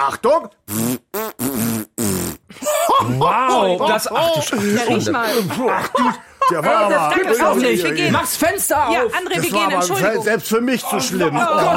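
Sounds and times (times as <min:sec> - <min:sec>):
speech: 0:00.0 - 0:01.0, 0:03.1 - 0:11.7
tonal farting noises imitating a TV theme tune: 0:00.6 - 0:02.5
laughter: 0:02.5 - 0:08.4, 0:09.3 - 0:11.7.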